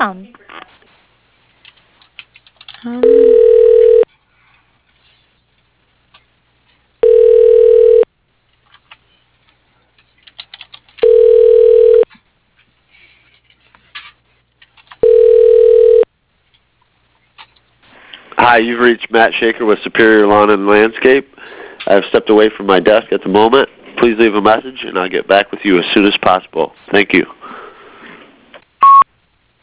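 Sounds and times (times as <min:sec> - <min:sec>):
speech: 0:00.0 - 0:00.4, 0:02.8 - 0:03.2, 0:18.5 - 0:27.4
telephone ringback tone while a call is transferred: 0:03.0 - 0:04.0, 0:07.0 - 0:08.1, 0:11.0 - 0:12.0, 0:15.0 - 0:16.1, 0:28.8 - 0:29.0.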